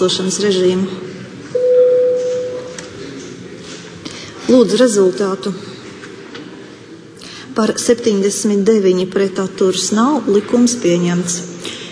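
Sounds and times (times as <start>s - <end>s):
speech: 0.0s - 1.1s, 4.5s - 5.7s, 7.6s - 11.8s
bell rung in parliament to call a vote: 1.6s - 2.7s.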